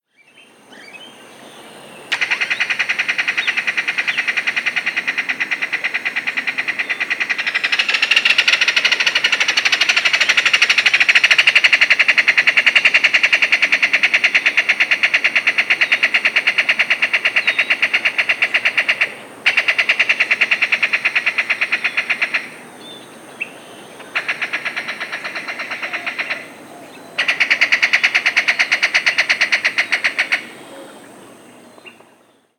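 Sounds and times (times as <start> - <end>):
bird song: 0.0 - 4.3, 22.8 - 32.5
ringed kingfisher call: 2.1 - 22.7, 23.4 - 30.9.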